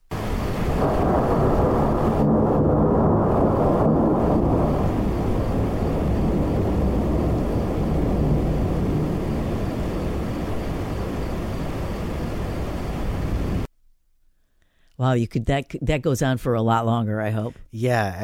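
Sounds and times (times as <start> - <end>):
heavy alpine rainstorm in Switzerland: 0.0 - 13.7
speech: 15.0 - 18.2.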